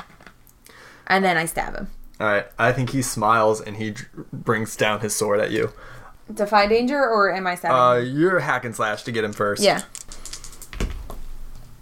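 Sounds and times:
speech: 1.1 - 10.0
dice clattering against a table: 9.8 - 11.2.

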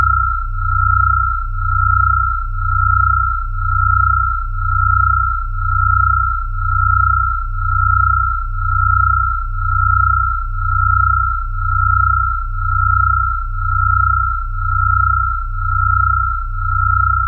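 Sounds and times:
dense low hum pulsing: 0.0 - 17.2
steady pure tone of binaural beats: 8.6 - 17.2.

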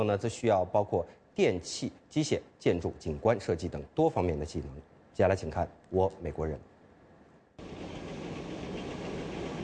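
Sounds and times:
speech: 0.0 - 6.7
scale model trains running on tracks of a layout recreating Chattanooga as a railway hub: 7.6 - 9.6.

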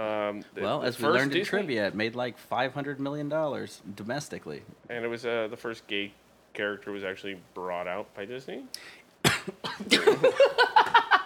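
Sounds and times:
speech: 0.0 - 9.0
person coughing with hacking coughs: 9.2 - 10.2.

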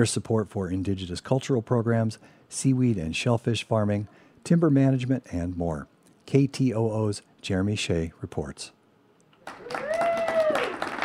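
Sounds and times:
speech: 0.0 - 8.8
small crowd clapping at an agreement signing: 9.4 - 11.0
voiced cheer or exclamation: 9.5 - 11.0.

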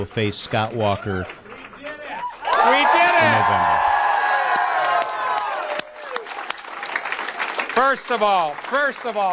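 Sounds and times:
speech: 0.0 - 1.4, 2.6 - 3.9, 7.8 - 9.3
large excited crowd applauding: 0.5 - 9.3
crowd cheering and whooping: 2.1 - 6.6.

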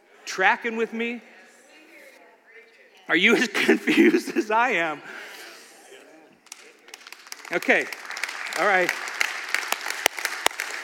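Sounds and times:
speech: 0.4 - 1.3, 3.1 - 5.2, 7.5 - 8.0, 8.6 - 9.0
crowd applauding: 6.4 - 10.8
sharper hand claps: 6.4 - 10.8.

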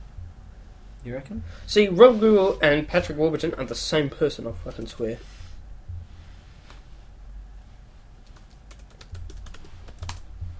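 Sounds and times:
low steady hum: 0.0 - 10.5
speech: 1.0 - 5.4
typing on a computer keyboard: 8.2 - 10.3.

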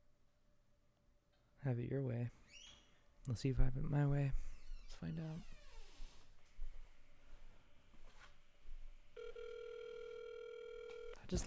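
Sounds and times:
speech: 1.6 - 5.6, 11.3 - 11.4
telephone ringing tone on a call to a fast-food restaurant: 9.2 - 11.2.

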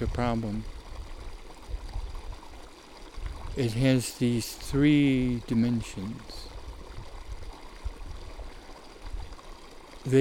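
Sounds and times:
speech: 0.0 - 0.8, 3.6 - 6.5, 10.0 - 10.2
flowing stream rushing and burbling: 0.0 - 10.2.

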